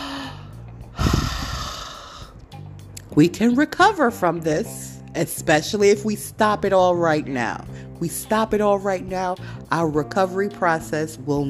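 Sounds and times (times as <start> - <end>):
deep breath: 0.0 - 2.4
speech: 3.2 - 11.4.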